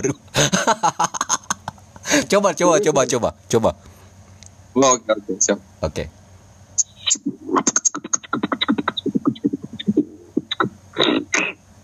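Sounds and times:
speech: 0:00.0 - 0:01.4, 0:02.3 - 0:04.0, 0:04.8 - 0:06.2, 0:07.1 - 0:07.5
laughter: 0:00.0 - 0:03.1
faint steady whine: 0:00.0 - 0:11.8
voice beatboxing distorted over a phone line: 0:06.8 - 0:11.6.

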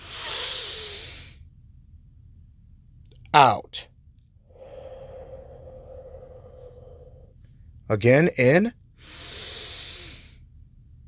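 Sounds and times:
deep breath drawn in through the nose during a guided breathing exercise: 0:00.0 - 0:01.4, 0:04.5 - 0:07.4, 0:09.0 - 0:10.4
speech: 0:03.4 - 0:03.9, 0:07.9 - 0:09.2.

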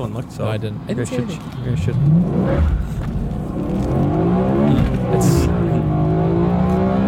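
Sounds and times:
speech: 0:00.0 - 0:04.0
high-revving V8 car engine heard from inside the cabin: 0:01.8 - 0:07.0.

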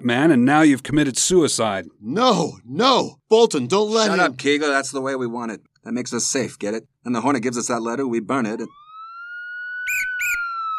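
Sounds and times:
speech: 0:00.0 - 0:08.9
police car sirens wailing outside: 0:08.6 - 0:10.7.

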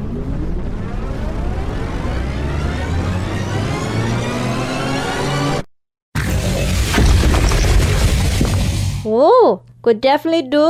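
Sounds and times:
weapon whine climbing in pitch: 0:00.0 - 0:09.1
weapon blast shattering a training dummy: 0:06.2 - 0:09.1
speech: 0:09.2 - 0:10.6.

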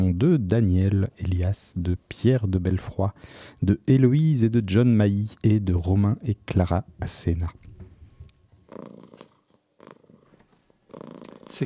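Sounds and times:
speech: 0:00.0 - 0:07.6
domestic cat purring: 0:08.6 - 0:11.6.

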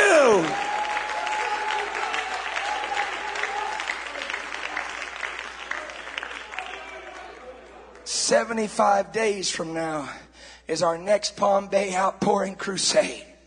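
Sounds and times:
crowd clapping: 0:00.0 - 0:08.2
speech: 0:08.3 - 0:13.3.

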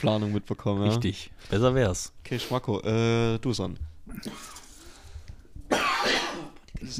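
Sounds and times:
speech: 0:00.0 - 0:04.6, 0:06.8 - 0:06.9
harsh raspy cough after puffs on an e-cigarette: 0:04.1 - 0:04.6, 0:05.7 - 0:06.7.

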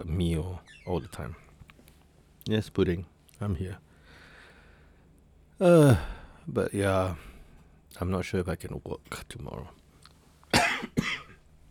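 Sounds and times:
speech: 0:00.0 - 0:01.5, 0:02.4 - 0:03.9, 0:05.6 - 0:07.3, 0:07.9 - 0:09.8
harsh throat-clearing coughs from tickled throat: 0:10.5 - 0:11.4.

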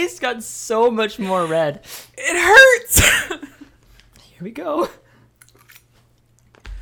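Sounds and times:
speech: 0:00.2 - 0:03.5, 0:04.4 - 0:05.0
person chewing spicy food: 0:05.3 - 0:06.8.

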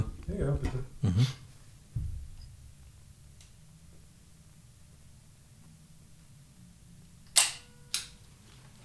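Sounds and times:
speech: 0:00.5 - 0:01.4
soft low thumps: 0:01.8 - 0:03.1
phone camera shutter click: 0:07.4 - 0:08.2.

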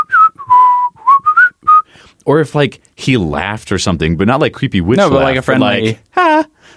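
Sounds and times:
person whistling a tune: 0:00.0 - 0:01.9
speech: 0:02.3 - 0:06.5.

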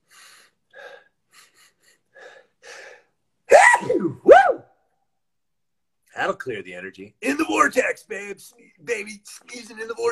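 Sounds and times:
loud sneezes: 0:03.5 - 0:04.6
speech: 0:06.2 - 0:10.1.

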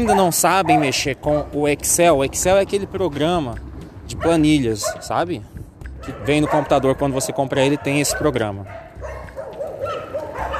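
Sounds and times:
several dogs barking and yipping outdoors on a street: 0:00.0 - 0:02.2, 0:04.1 - 0:05.2, 0:05.8 - 0:10.5
speech: 0:00.0 - 0:08.8
low rumble of street noise: 0:00.0 - 0:10.5.

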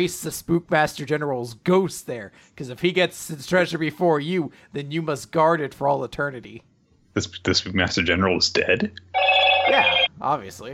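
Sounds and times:
speech: 0:00.0 - 0:10.7
electronic phone notification tone: 0:09.2 - 0:10.1.

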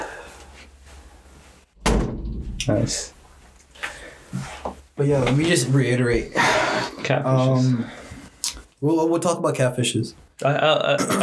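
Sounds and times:
door swinging shut: 0:01.8 - 0:02.8
speech: 0:02.6 - 0:03.2, 0:05.0 - 0:08.0, 0:08.8 - 0:11.2.

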